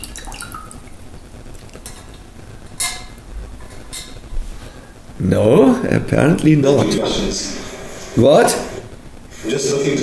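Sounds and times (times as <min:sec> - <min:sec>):
small drips of water: 0:00.0 - 0:03.2
speech: 0:05.2 - 0:08.7, 0:09.5 - 0:10.0.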